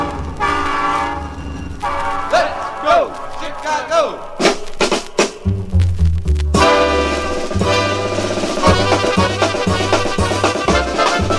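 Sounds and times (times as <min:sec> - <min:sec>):
sustained horn-like tone: 0:00.0 - 0:03.9, 0:06.6 - 0:11.3
train rumbling on a record: 0:00.0 - 0:11.3.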